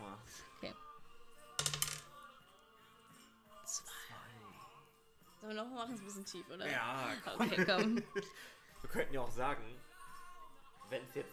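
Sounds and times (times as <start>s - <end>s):
die rolled during a game clattering across a hard surface: 1.6s - 2.1s
speech: 5.5s - 9.9s, 10.9s - 11.3s
laughter: 6.7s - 9.3s.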